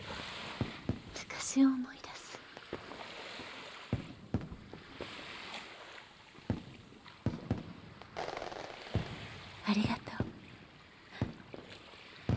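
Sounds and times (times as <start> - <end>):
fireworks popping and crackling over a beach by the sea: 0.0 - 1.4, 2.5 - 5.3, 6.4 - 10.4, 11.1 - 12.3
seaside ambience: 0.0 - 12.3
speech: 1.5 - 2.0.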